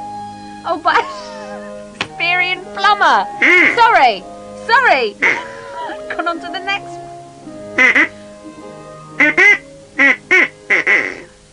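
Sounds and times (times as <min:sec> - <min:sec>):
speech: 0:00.6 - 0:01.2, 0:02.2 - 0:05.5, 0:06.1 - 0:07.0
duck quacking: 0:03.4 - 0:04.2, 0:04.8 - 0:06.2, 0:07.8 - 0:08.2, 0:09.2 - 0:11.3.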